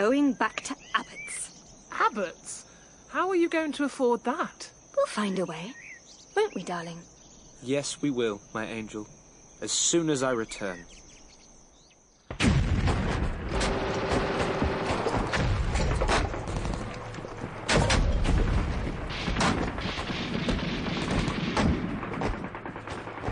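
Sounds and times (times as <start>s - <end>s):
speech: 0.0s - 1.2s, 2.0s - 5.8s, 6.4s - 11.0s
artillery and gunfire barrage in a war trench: 12.3s - 23.3s.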